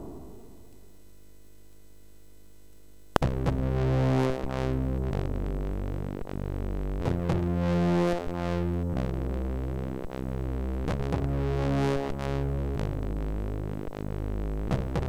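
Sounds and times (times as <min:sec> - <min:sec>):
chiptune music on a MOS6581 chip: 0:03.2 - 0:15.0.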